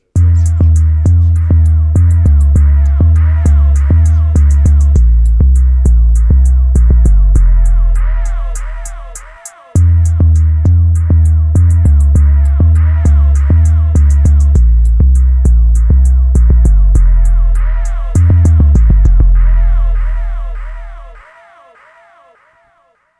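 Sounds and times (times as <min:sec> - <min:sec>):
woofer bass: 0:00.0 - 0:21.3.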